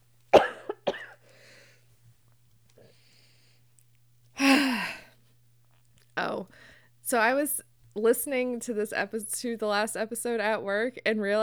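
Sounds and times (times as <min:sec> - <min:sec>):
person coughing: 0:00.4 - 0:01.2
faint breathing: 0:01.2 - 0:01.9, 0:02.8 - 0:03.7, 0:06.5 - 0:07.0
speech: 0:07.1 - 0:11.4.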